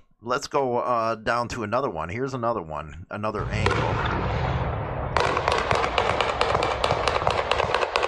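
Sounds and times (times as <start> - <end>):
speech: 0.2 - 4.5
AK-47 rifle gunfire in a played video: 3.5 - 8.0.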